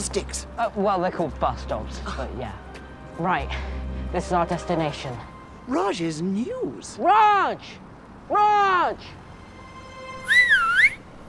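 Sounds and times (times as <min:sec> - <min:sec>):
speech: 0:00.0 - 0:09.2
person whistling: 0:10.2 - 0:11.0.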